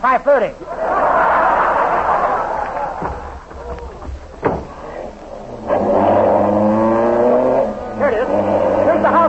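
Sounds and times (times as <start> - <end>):
speech: 0.0 - 1.0
laughter: 0.6 - 4.1
sharp knock: 3.0 - 4.8
ambulance engine revving on an emergency call: 4.6 - 9.2.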